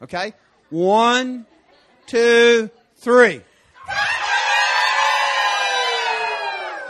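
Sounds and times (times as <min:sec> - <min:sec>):
speech: 0:00.0 - 0:01.5, 0:02.1 - 0:04.0
crowd of people imitating a rooster crow: 0:03.8 - 0:06.8.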